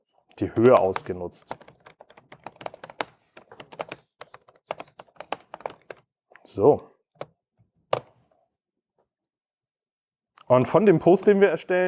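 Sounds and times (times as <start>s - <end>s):
speech: 0.4s - 1.8s, 6.6s - 6.9s, 10.5s - 11.8s
fingers typing on a computer keyboard: 0.4s - 6.1s.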